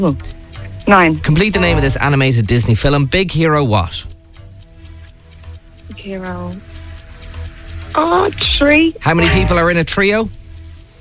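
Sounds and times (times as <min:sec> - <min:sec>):
speech: 0:00.0 - 0:04.1, 0:06.0 - 0:06.7, 0:07.9 - 0:10.4
quiz countdown clock ticking: 0:00.0 - 0:10.9.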